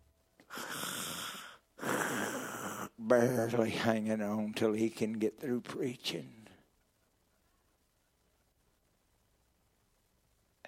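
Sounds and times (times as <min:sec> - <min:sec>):
person imitating snoring with raspy breathy rasps: 0:00.5 - 0:02.9
speech: 0:03.0 - 0:06.4.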